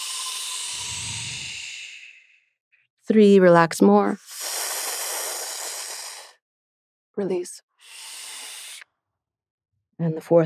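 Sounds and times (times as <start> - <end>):
deep breath out: 0.0 - 2.6, 4.3 - 6.4, 7.8 - 8.9
speech: 3.1 - 4.3, 7.2 - 8.0, 10.0 - 10.4.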